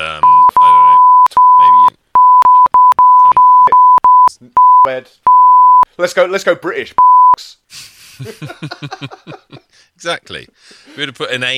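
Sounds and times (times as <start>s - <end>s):
voice fragments: 0.0s - 4.0s
censorship bleep tone: 0.2s - 5.9s, 7.0s - 7.4s
speech: 4.9s - 5.2s, 6.0s - 7.1s, 8.2s - 11.5s
laughter: 7.7s - 9.8s.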